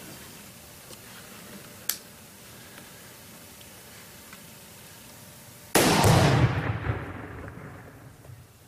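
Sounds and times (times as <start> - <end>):
large charge of tannerite exploding from an AR rifle shot: 5.7 - 8.3.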